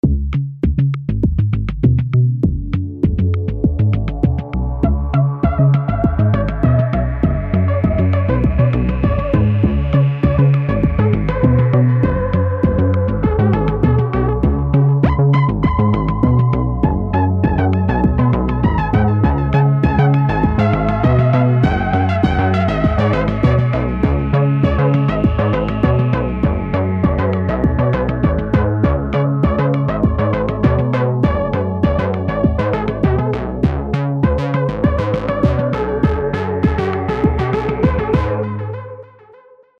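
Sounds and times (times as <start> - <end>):
electropop music: 0.0 - 39.4.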